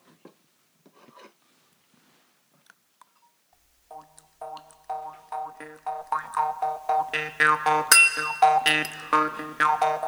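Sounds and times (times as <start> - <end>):
jaw harp twanging over a buzzing drone: 3.9 - 10.0.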